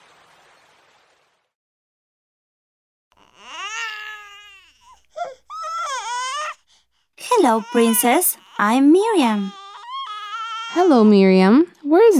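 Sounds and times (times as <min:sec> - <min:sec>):
baby wailing: 0:03.2 - 0:11.0
speech: 0:07.4 - 0:09.6, 0:10.8 - 0:12.1.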